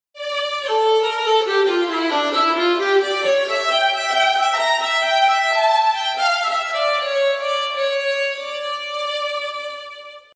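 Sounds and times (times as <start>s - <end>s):
fiddle: 0.2s - 10.3s.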